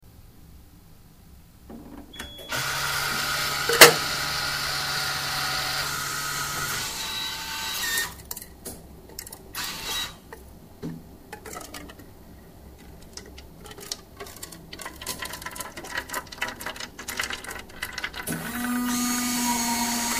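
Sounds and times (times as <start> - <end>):
dispensing machine: 1.7 - 8.2, 12.9 - 20.1.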